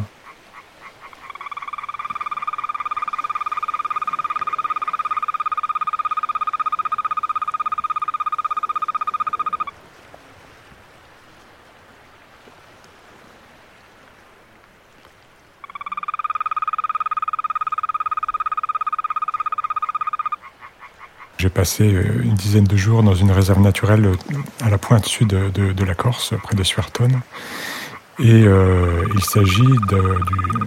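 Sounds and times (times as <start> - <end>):
toad trilling in a nature reserve at the southern tip of Corsica: 0.0 - 9.7, 15.6 - 21.4, 23.8 - 30.6
faint hiss: 0.0 - 30.6
speech: 21.5 - 30.6.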